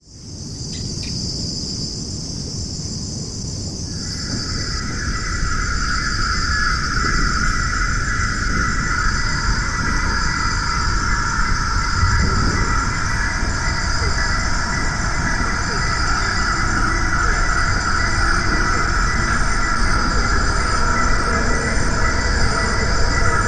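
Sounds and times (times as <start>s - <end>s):
crickets chirping: 0.0s - 23.4s.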